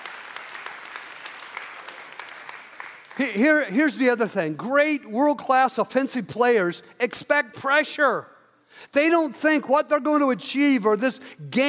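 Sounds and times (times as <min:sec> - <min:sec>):
audience applause: 0:00.0 - 0:03.4
speech: 0:03.2 - 0:11.6.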